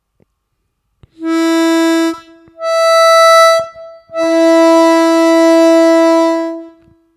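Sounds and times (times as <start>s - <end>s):
harmonica playing octaves with tongue blocking: 1.2s - 6.9s.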